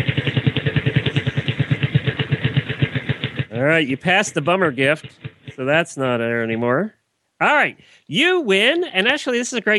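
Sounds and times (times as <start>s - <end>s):
prize wheel pointer clacking over pegs: 0.1s - 6.7s
speech: 3.6s - 9.7s.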